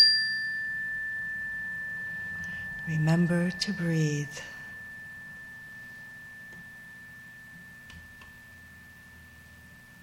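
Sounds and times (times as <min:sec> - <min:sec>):
meditation chime ringing during a guided meditation: 0:00.0 - 0:10.0
speech: 0:02.9 - 0:04.6.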